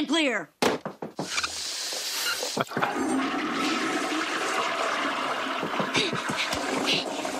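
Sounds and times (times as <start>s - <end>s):
speech: 0.0s - 0.6s, 2.6s - 3.9s, 6.0s - 7.3s
water swirling and draining clockwise in a toilet: 1.5s - 7.3s
toilet flush click: 2.7s - 7.3s.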